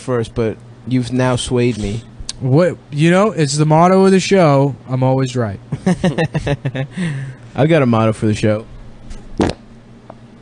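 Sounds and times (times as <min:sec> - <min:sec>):
speech: 0:00.0 - 0:08.7
laughter: 0:05.7 - 0:07.3
fart: 0:09.4 - 0:09.7.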